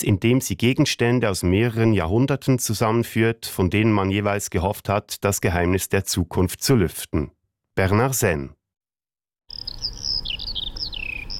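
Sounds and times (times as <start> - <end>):
speech: 0.0 - 8.6
Eurasian Skylark song: 9.5 - 11.3.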